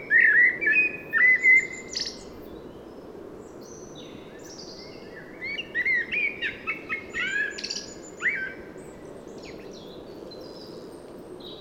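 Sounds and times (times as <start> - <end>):
common blackbird Turdus merula fluted whistled song: 0.0 - 2.3, 4.4 - 8.6.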